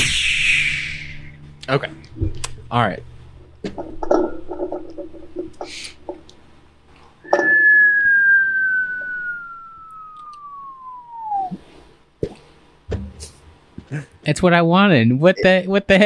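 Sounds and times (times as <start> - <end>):
whistled cartoon falling-down sound effect: 0.0 - 1.4, 7.2 - 11.7
speech: 1.7 - 4.3, 13.9 - 16.0
scattered clattering noises: 3.4 - 6.3.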